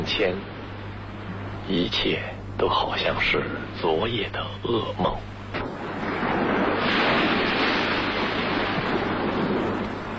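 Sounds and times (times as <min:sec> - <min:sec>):
sea waves roaring: 0:00.0 - 0:10.1
speech: 0:00.1 - 0:00.6, 0:01.7 - 0:05.7.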